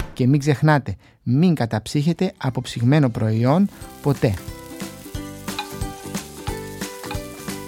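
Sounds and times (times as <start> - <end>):
speech: 0.2 - 4.6
frozen peas sizzling and crackling in a hot cooking pot: 2.6 - 7.6
stirring with a ladle: 3.7 - 7.6.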